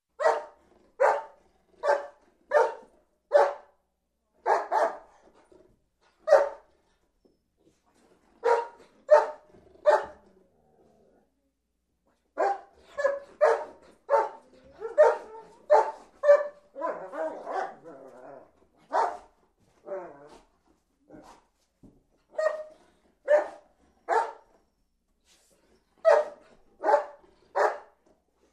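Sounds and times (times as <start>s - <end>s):
happy dog playing and barking in a garden: 0.2s - 3.8s, 4.4s - 5.2s, 6.2s - 6.6s, 8.4s - 10.2s, 12.4s - 17.9s, 18.9s - 19.3s, 22.3s - 24.5s, 26.0s - 28.0s.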